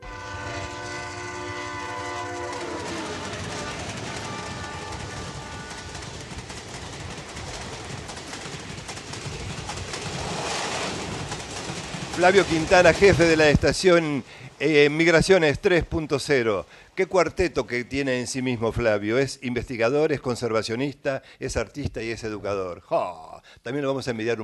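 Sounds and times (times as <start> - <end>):
train horn: 0.0 - 6.5
train moving on rails: 0.0 - 14.7
speech: 12.2 - 24.4.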